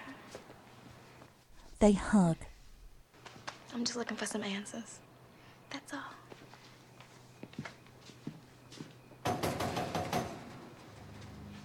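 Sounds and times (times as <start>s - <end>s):
speech: 1.8s - 2.5s, 3.8s - 5.0s
rattling bangs on a screen door: 9.2s - 11.1s.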